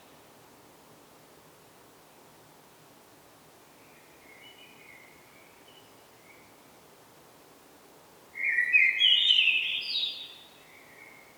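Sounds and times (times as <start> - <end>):
common blackbird Turdus merula singing whistled phrase: 8.4 - 10.4.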